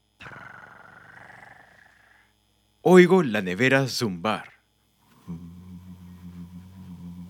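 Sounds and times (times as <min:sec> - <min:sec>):
cat purring: 0:00.3 - 0:02.1
speech: 0:02.8 - 0:04.6.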